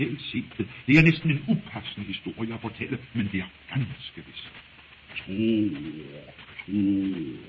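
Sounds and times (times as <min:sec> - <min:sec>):
speech: 0:00.0 - 0:07.4
doves cooing: 0:05.2 - 0:07.4.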